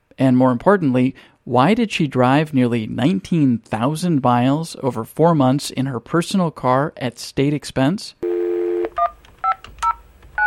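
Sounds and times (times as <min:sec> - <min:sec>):
speech: 0:00.2 - 0:08.2
telephone dial tone: 0:08.2 - 0:09.6.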